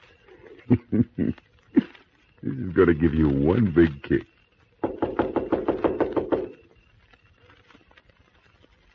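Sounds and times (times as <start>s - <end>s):
speech: 0.7s - 1.5s, 2.4s - 4.3s
knocking on a door: 4.8s - 6.6s.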